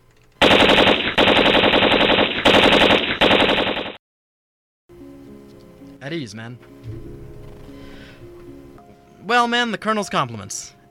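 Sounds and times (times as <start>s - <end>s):
machine gun fire in a combat scene: 0.4s - 4.0s
speech: 6.1s - 7.2s, 9.3s - 10.8s.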